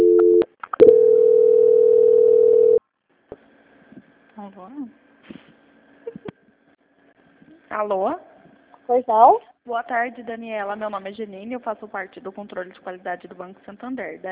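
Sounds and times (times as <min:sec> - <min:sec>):
telephone line tone during a call transfer: 0:00.0 - 0:02.8
speech: 0:07.8 - 0:08.3, 0:08.9 - 0:14.2.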